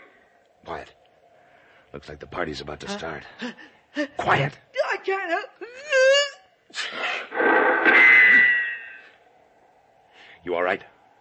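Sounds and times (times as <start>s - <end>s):
speech: 0.7s - 1.0s, 1.9s - 8.1s, 10.4s - 10.9s
person sneezing after a drawn-out vocal build-up: 6.7s - 7.3s.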